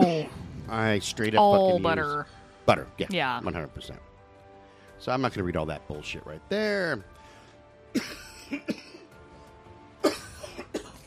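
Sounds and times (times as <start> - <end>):
speech: 0.7 - 4.1, 5.0 - 7.2, 7.9 - 8.9
person hacking coughs: 8.0 - 9.1, 10.0 - 11.0.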